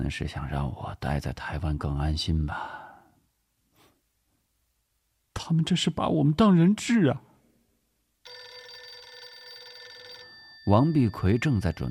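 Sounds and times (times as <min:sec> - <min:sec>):
speech: 0:00.0 - 0:02.8, 0:05.5 - 0:07.3, 0:10.7 - 0:11.8
telephone ringing with steady trilling tone: 0:08.3 - 0:11.8.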